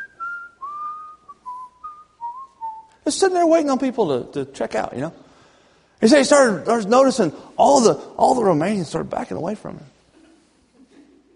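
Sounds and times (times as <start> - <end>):
man whistling a slow hymn tune in a hardware store in Romania: 0.0 - 3.0
speech: 3.1 - 5.2, 6.0 - 10.0.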